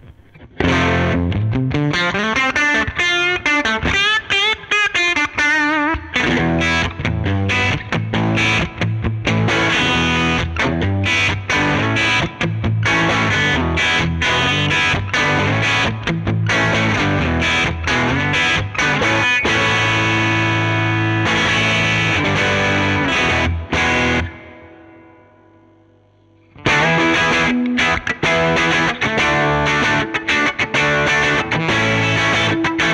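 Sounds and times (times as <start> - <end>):
heavily overdriven electric guitar through a tube amplifier playing distorted riffs and chords: 0.0 - 32.9.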